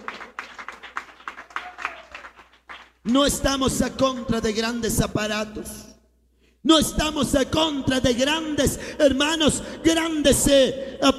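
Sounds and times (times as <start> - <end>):
audience at an afternoon religious service clapping in praise: 0.0 - 3.2
speech: 3.0 - 5.9, 6.7 - 11.1.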